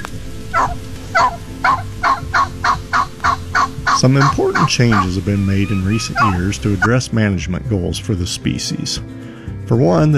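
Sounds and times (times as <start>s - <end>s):
low rumble: 0.0s - 6.9s
wild turkey yelping in an assembly call: 0.0s - 7.0s
speech: 4.0s - 10.1s.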